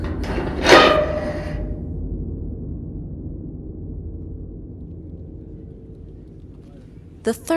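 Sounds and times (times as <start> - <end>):
heavy door slamming open with a loud bang: 0.0 - 1.8
low hum: 0.0 - 7.5
speech: 7.3 - 7.5.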